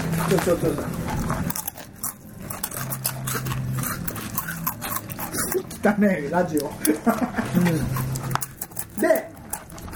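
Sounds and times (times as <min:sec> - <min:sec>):
crunching on hard fried potato stick snack in salad flavor: 0:00.0 - 0:09.9
speech: 0:00.3 - 0:01.0, 0:05.8 - 0:08.2
laughter: 0:06.8 - 0:08.0.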